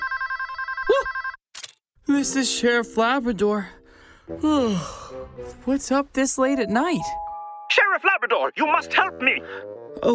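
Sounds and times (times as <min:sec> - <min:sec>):
telephone ringing with a trilling electronic bell: 0:00.0 - 0:01.4
speech: 0:02.1 - 0:07.2, 0:08.1 - 0:10.1.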